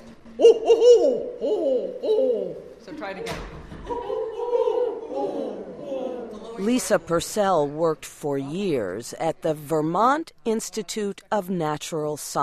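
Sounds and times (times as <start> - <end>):
person imitating owl hoots: 0.3 - 2.8, 3.8 - 6.4
speech: 0.4 - 4.2, 6.6 - 12.4.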